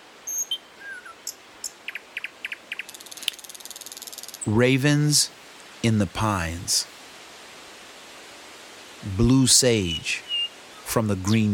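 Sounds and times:
small birds chirping in short quick notes: 0:00.2 - 0:04.5, 0:09.8 - 0:11.5
faint steady insect-like trill: 0:02.9 - 0:04.5
speech: 0:04.4 - 0:07.0, 0:09.0 - 0:10.3, 0:10.9 - 0:11.5.

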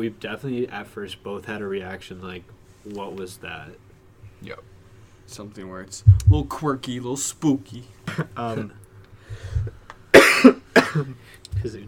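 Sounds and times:
speech: 0:00.0 - 0:04.7, 0:05.3 - 0:09.7, 0:11.0 - 0:11.8
low rumbling: 0:06.0 - 0:06.6
person coughing: 0:08.1 - 0:08.4, 0:10.1 - 0:11.2.

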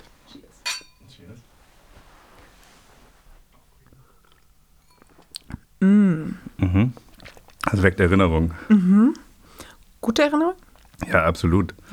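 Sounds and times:
glasses clinking in a toast: 0:00.6 - 0:01.2
person sipping: 0:03.8 - 0:10.0, 0:10.6 - 0:11.9
speech: 0:05.8 - 0:07.0, 0:07.7 - 0:09.2, 0:10.1 - 0:11.9.

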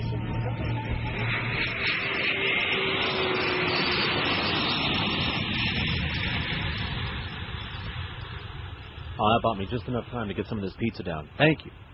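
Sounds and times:
jet airliner engines spooling up for takeoff: 0:00.0 - 0:11.9
speech: 0:09.2 - 0:11.9.

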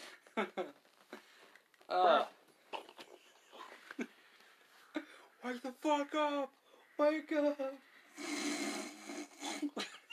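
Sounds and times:
speech: 0:00.4 - 0:00.8, 0:05.5 - 0:08.3
breathy hissing exhalation after smoke hits the throat: 0:08.0 - 0:09.7.

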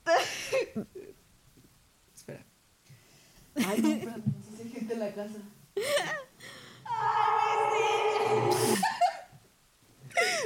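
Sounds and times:
speech: 0:00.7 - 0:01.0, 0:03.7 - 0:06.3
voice imitating ghostly wail with echo effect: 0:06.9 - 0:09.1.

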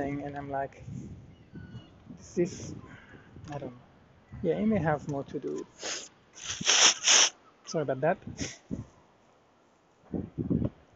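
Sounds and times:
speech: 0:00.4 - 0:01.6, 0:02.2 - 0:06.0, 0:07.7 - 0:08.9, 0:10.1 - 0:10.5
person blowing nose: 0:05.8 - 0:07.4
sniffs: 0:05.8 - 0:07.4.

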